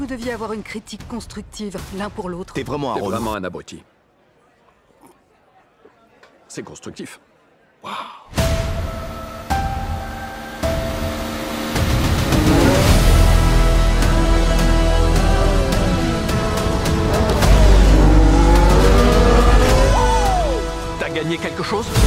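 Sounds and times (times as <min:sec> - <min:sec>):
speech: 0:00.0 - 0:03.9, 0:06.5 - 0:08.4, 0:21.2 - 0:22.0
race car engines whining and revving as cars lap a circuit: 0:10.5 - 0:21.0.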